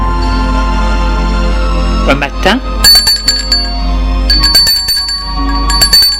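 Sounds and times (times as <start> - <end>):
bell rung at a front gate: 0.1 - 1.3, 2.9 - 6.1
speech: 2.1 - 2.7.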